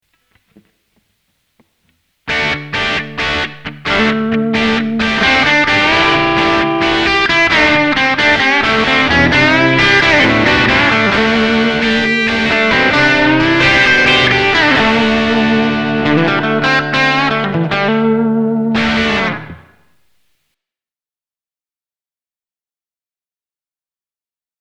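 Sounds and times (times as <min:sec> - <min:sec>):
electric guitar through amp plug with reverb, compression and EQ: 0:02.3 - 0:19.7.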